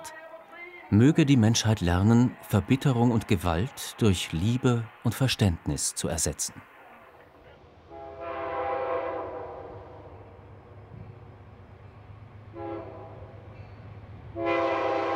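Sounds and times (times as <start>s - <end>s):
speech: 0.9s - 6.7s
train rumbling along the tracks heading north near York Alabama: 1.0s - 15.1s
train horn sounding long blasts: 7.9s - 10.3s, 12.5s - 13.4s, 14.3s - 15.1s.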